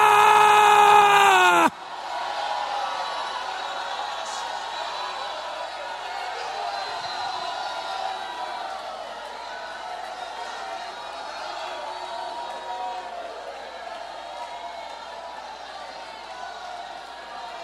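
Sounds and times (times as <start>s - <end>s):
audience shouting praise: 0.0s - 2.0s.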